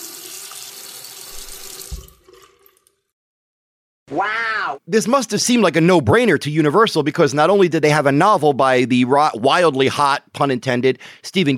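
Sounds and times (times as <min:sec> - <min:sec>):
water running from a faucet: 0:00.0 - 0:03.1
speech: 0:04.1 - 0:11.5.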